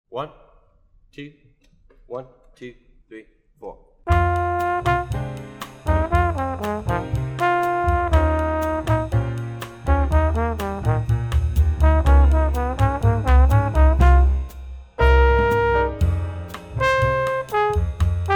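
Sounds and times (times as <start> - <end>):
tenor trombone playing Latin music: 4.1 - 18.3.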